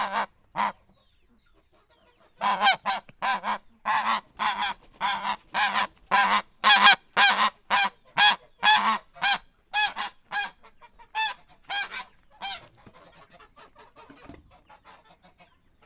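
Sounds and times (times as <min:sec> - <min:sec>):
domestic goose honking in a farmyard: 0:00.0 - 0:00.8, 0:02.4 - 0:12.7.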